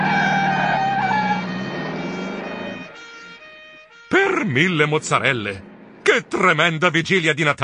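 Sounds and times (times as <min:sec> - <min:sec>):
ambulance siren wailing: 0:00.0 - 0:04.1
rumble of a passing vehicle: 0:00.0 - 0:07.6
speech: 0:04.4 - 0:07.6.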